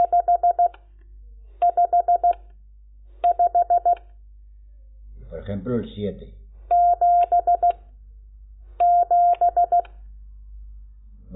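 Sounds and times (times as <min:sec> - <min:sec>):
Morse code dots for the digit 5 in a mid-pitched tone: 0:00.0 - 0:00.8, 0:01.6 - 0:02.5, 0:03.2 - 0:04.0, 0:06.7 - 0:07.8, 0:08.8 - 0:10.0
speech: 0:05.5 - 0:06.4.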